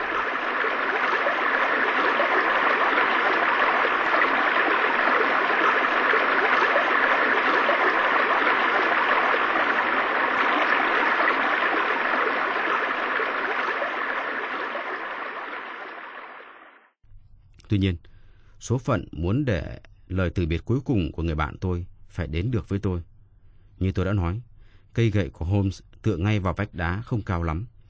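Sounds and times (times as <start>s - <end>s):
waterfall roaring: 0.0s - 16.6s
speech: 17.7s - 23.1s, 23.8s - 27.7s.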